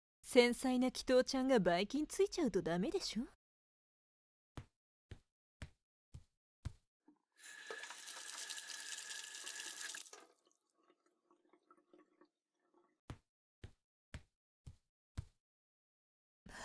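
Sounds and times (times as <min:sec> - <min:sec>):
speech: 0:00.3 - 0:03.4
tap water running while hands are washed: 0:07.4 - 0:10.6.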